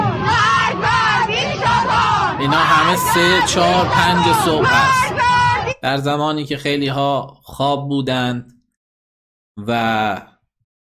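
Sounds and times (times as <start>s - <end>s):
large crowd shouting: 0.0s - 5.8s
speech: 2.5s - 5.1s, 5.8s - 8.6s, 9.6s - 10.3s.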